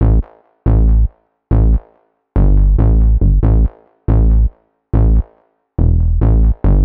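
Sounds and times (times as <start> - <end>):
house music bass line in A minor at 140 BPM: 0.0 - 1.8, 2.4 - 6.8.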